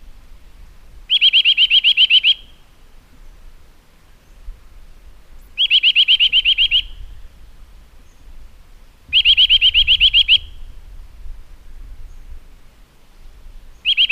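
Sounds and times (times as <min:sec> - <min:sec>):
Eurasian nuthatch piping: 0:01.1 - 0:03.4, 0:05.4 - 0:07.4, 0:09.1 - 0:10.7, 0:13.7 - 0:14.1.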